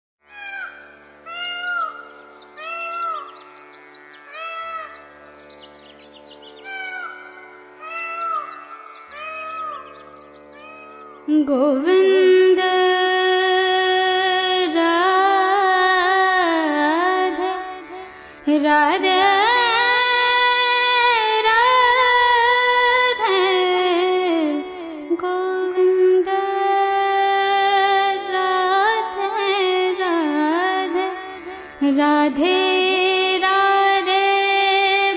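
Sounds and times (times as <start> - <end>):
sitar: 0.2 - 35.1
tanpura drone: 0.2 - 35.1
woman chanting a mantra: 11.3 - 35.1.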